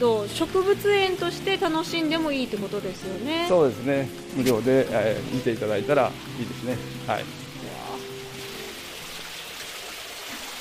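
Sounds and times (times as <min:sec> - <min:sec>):
speech: 0:00.0 - 0:07.4
water rushing from a handmade stone waterfall into a pond in a botanical garden: 0:00.0 - 0:10.6.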